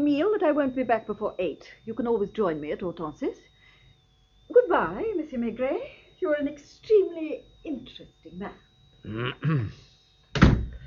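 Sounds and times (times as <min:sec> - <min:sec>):
speech: 0:00.2 - 0:03.5, 0:04.5 - 0:09.8
door banged shut by an angry woman: 0:10.3 - 0:10.8.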